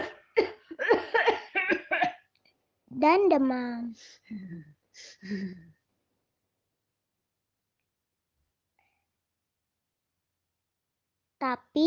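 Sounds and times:
person acting out harsh breathy coughs as a COVID-19 symptom: 0.0 - 2.2
speech: 3.0 - 5.7, 11.4 - 11.8.

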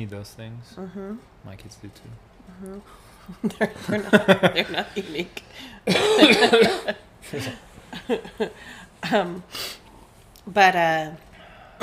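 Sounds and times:
speech: 0.0 - 9.8, 10.4 - 11.8
laughter: 3.2 - 9.3
harsh rough cough: 5.8 - 7.6.

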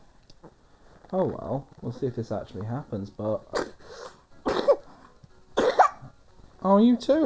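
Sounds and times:
speech: 1.1 - 3.7, 6.6 - 7.2
person coughing: 4.5 - 4.9, 5.6 - 6.0.

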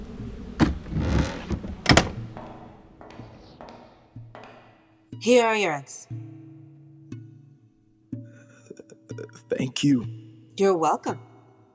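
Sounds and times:
low hum: 0.0 - 4.4
door in an all-steel house pushed shut against the wind: 0.6 - 2.3
speech: 5.2 - 6.2, 9.4 - 11.3.

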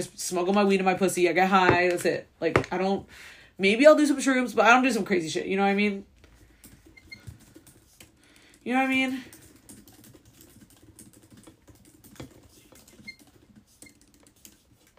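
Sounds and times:
speech: 0.0 - 6.1, 8.6 - 9.4
typing on a computer keyboard: 6.3 - 14.9.

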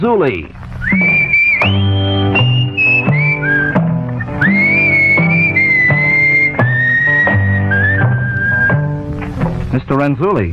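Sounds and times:
speech: 0.0 - 1.8, 9.8 - 10.5
sharp rhythmic taps: 0.7 - 9.8
person whistling a bright sustained melody with pitch bends: 0.8 - 9.0
low accompaniment: 0.8 - 9.9.

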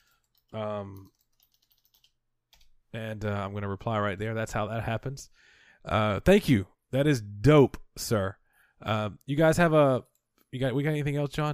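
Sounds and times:
typing on a computer keyboard: 0.0 - 2.8
speech: 0.5 - 1.2, 2.9 - 11.5.

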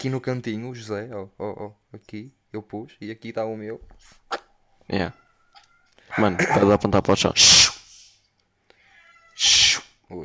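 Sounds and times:
speech: 0.0 - 4.2, 4.9 - 5.2, 6.1 - 7.7, 9.4 - 10.2
cat meowing with short breathy harsh cries: 4.9 - 6.4, 8.8 - 9.8.

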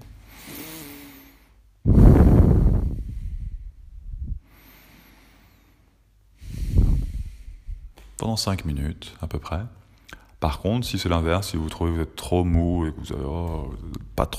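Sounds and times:
breathing in and out through the nose: 0.2 - 2.2, 4.4 - 7.9
speech: 8.2 - 9.8, 10.4 - 14.3.

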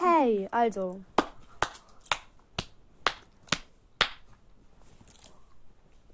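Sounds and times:
speech: 0.5 - 1.1
hands clapping: 1.1 - 4.4.

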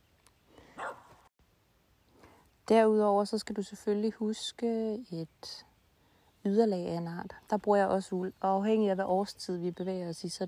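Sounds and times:
dog barking: 0.8 - 1.2
speech: 2.7 - 5.7, 6.4 - 10.4.

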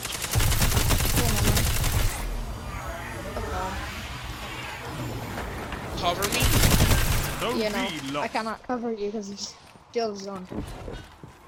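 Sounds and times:
heavy machine gun fire in a video game: 0.0 - 2.3, 6.2 - 8.2
video game noise: 0.0 - 11.4
speech: 7.5 - 11.1.

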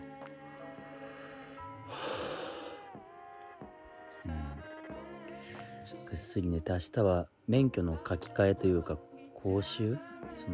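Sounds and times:
person yawning: 1.9 - 2.9
speech: 6.1 - 10.5.

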